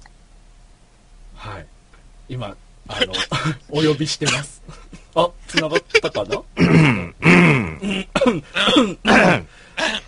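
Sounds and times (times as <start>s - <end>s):
speech: 2.3s - 7.6s, 8.2s - 10.0s
person coughing: 3.0s - 4.5s, 6.6s - 10.0s
laughter: 4.7s - 6.7s
person clearing throat loudly: 6.6s - 10.0s.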